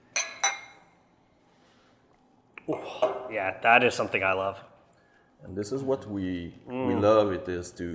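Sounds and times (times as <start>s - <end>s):
beer glasses clinking in a toast: 0.1s - 1.0s
speech: 2.7s - 4.7s, 5.4s - 7.9s.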